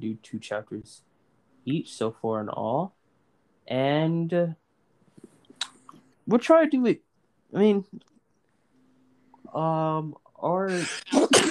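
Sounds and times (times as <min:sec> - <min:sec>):
speech: 0:00.0 - 0:03.0, 0:03.7 - 0:04.6, 0:06.3 - 0:08.1, 0:09.5 - 0:11.4
person sneezing: 0:10.7 - 0:11.4.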